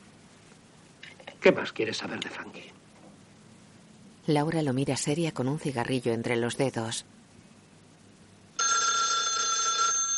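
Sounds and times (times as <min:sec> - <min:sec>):
speech: 0:01.4 - 0:02.8, 0:04.3 - 0:07.2
telephone bell ringing: 0:08.6 - 0:10.1.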